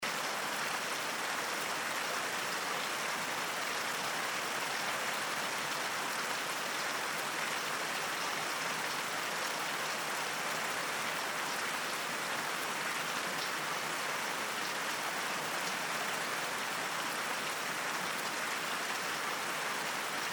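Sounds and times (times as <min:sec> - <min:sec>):
rainstorm: 0:00.0 - 0:20.3.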